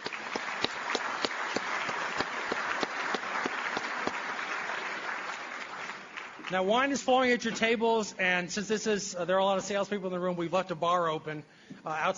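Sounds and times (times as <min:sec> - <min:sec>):
room full of people applauding: 0:00.0 - 0:06.6
speech: 0:06.5 - 0:12.1.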